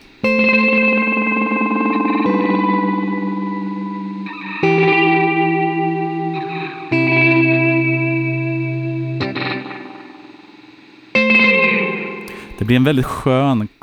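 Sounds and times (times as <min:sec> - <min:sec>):
electric guitar chords through a multi-tap delay pedal with four repeats: 0:00.0 - 0:12.6
speech: 0:12.7 - 0:13.8.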